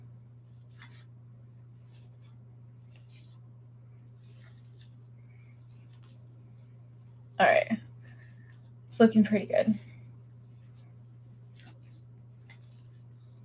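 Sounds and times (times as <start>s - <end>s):
steady low electrical hum: 0.0s - 13.4s
wet dough mixture being stirred with scraping and squishing strokes: 0.4s - 8.8s, 10.1s - 13.4s
speech: 7.4s - 7.8s, 9.0s - 9.8s.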